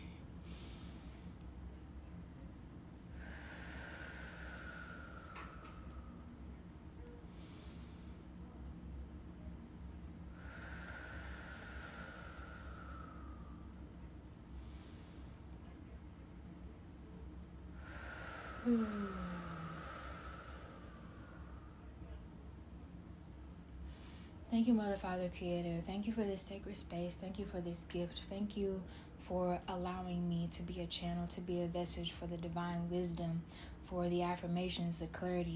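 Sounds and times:
slow deep breaths at the start of a prayer session: 0.0s - 1.6s, 2.4s - 8.6s, 10.2s - 15.8s, 17.7s - 22.2s
constant low hum: 0.0s - 35.5s
speech: 18.7s - 19.1s, 24.6s - 35.5s.

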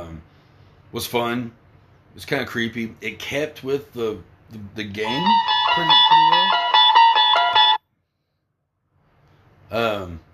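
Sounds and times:
speech: 0.9s - 6.4s, 9.7s - 10.3s
mobile phone ringtone playing a bright electronic melody: 5.0s - 7.8s.

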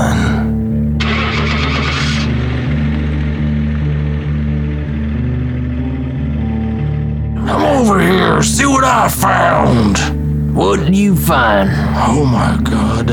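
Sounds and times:
truck engine cranking and settling into a low rumble: 0.0s - 13.1s
speech: 8.6s - 13.1s.

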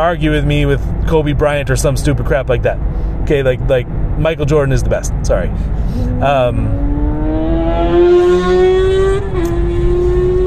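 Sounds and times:
speech: 0.0s - 7.0s, 7.8s - 8.7s
road rumble: 0.0s - 10.4s
motorcycle passing by: 5.9s - 10.4s.

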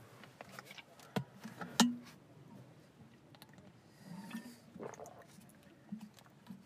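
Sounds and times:
low rustle: 0.0s - 6.6s
person drinking, sipping and swallowing: 4.2s - 6.6s.

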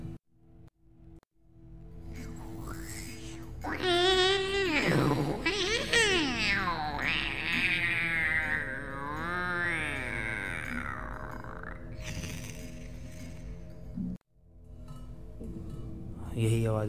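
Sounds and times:
cats wailing near a hostel: 3.6s - 12.8s.

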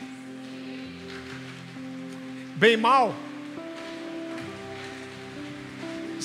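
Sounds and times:
heavy rain: 0.0s - 6.2s
speech: 2.6s - 3.3s.

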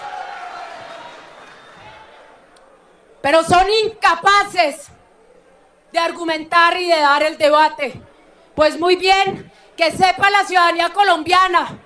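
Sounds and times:
sustained applause in a large chamber: 0.0s - 2.2s
murmur of voices: 1.6s - 11.8s
speech: 3.2s - 5.0s, 5.9s - 11.8s.

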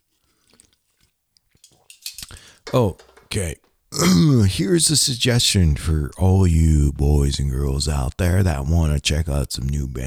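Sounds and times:
person taking a quick quiet sip from a drink: 0.1s - 2.6s
faint wet slurping: 0.2s - 1.2s
speech: 2.7s - 10.0s.

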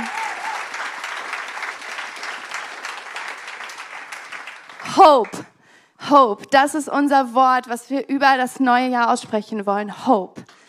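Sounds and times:
large crowd applauding: 0.0s - 5.5s
speech: 5.0s - 10.4s.

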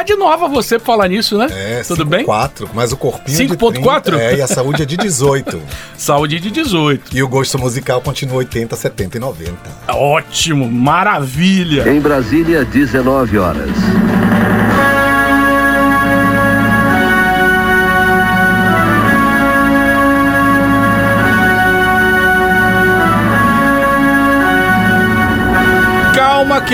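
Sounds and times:
speech: 0.0s - 15.0s
laughter: 2.0s - 6.9s
orchestral opera overture as radio program theme: 2.6s - 6.7s, 11.6s - 26.7s.

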